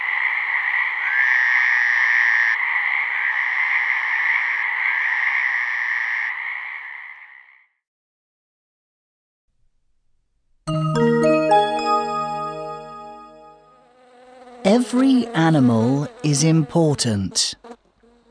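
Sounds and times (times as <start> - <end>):
frogs croaking in chorus: 0.0 - 7.8
short musical jingle: 10.7 - 13.8
speech: 14.8 - 17.6.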